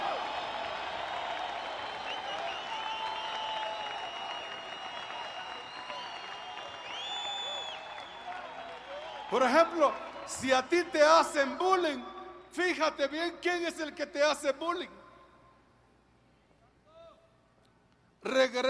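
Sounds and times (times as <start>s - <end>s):
large audience applauding: 0.0s - 10.8s
shouts, cheers and whistles from the audience: 0.0s - 11.2s
speech: 9.3s - 15.0s, 18.2s - 18.6s.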